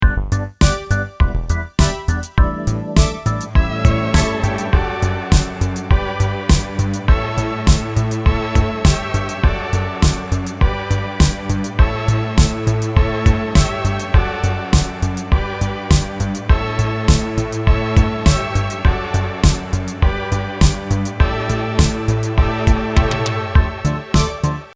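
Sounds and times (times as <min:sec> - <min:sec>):
synth: 0:00.0 - 0:24.7.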